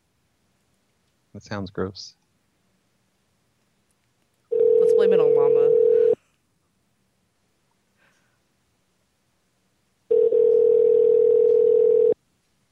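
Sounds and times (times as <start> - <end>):
speech: 1.4 - 2.2, 5.0 - 5.9
telephone dial tone: 4.5 - 6.2, 10.1 - 12.2.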